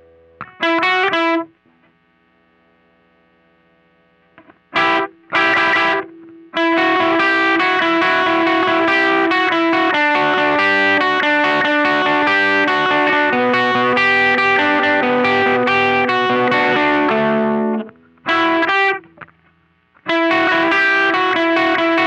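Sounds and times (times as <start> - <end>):
slow riff: 4.4 - 19.4, 20.0 - 22.0.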